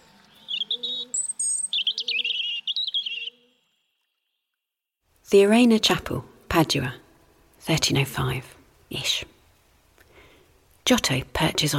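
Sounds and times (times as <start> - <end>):
robin singing: 0.2 - 4.4
speech: 5.3 - 7.0, 7.6 - 9.4, 10.9 - 11.7.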